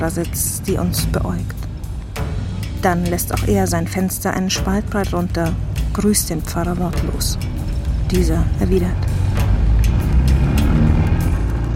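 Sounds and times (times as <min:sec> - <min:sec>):
speech: 0:00.0 - 0:01.6, 0:02.8 - 0:09.1
car accelerating and driving past at night: 0:09.0 - 0:11.7.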